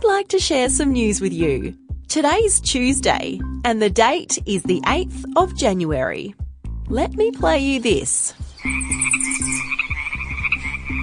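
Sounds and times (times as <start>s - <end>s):
speech: 0.2s - 8.9s
dense chorus of frogs croaking outdoors: 8.4s - 11.0s
continuous high insect-like trill: 8.6s - 10.8s.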